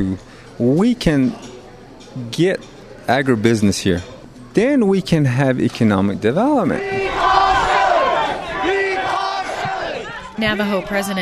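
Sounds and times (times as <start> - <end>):
speech: 0.0 - 1.5, 2.2 - 7.1, 10.4 - 11.2
angry crowd shouting: 6.8 - 11.2.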